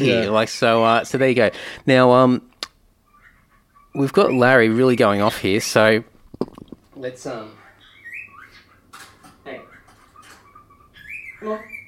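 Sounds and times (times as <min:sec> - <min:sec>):
speech: 0:00.0 - 0:02.5, 0:04.0 - 0:07.6, 0:11.4 - 0:11.7
small bird chirping and trilling: 0:03.0 - 0:05.5, 0:06.3 - 0:11.8.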